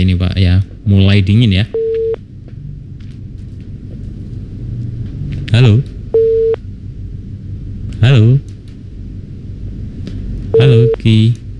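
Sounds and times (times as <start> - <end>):
speech: 0.0 - 1.8, 5.6 - 5.9
low constant rumble: 0.0 - 11.5
steady electronic tone of a dropped phone line: 6.2 - 6.6, 10.6 - 11.0.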